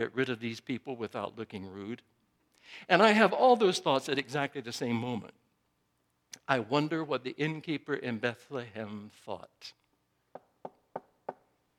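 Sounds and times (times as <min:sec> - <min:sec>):
speech: 0:00.0 - 0:05.4, 0:06.5 - 0:09.8
knocking on a wooden door: 0:10.3 - 0:11.5.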